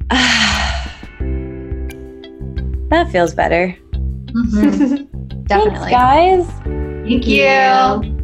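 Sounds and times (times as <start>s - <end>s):
deep breath in and out during a guided breathing moment: 0.0s - 1.3s
speech: 2.9s - 8.1s.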